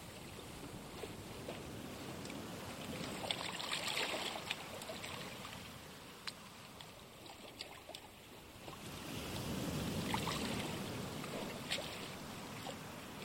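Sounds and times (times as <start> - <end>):
gentle sea waves lapping against the shore: 0.0 - 13.2
light wind: 0.0 - 13.2
small splashes: 2.2 - 9.4, 10.0 - 12.8.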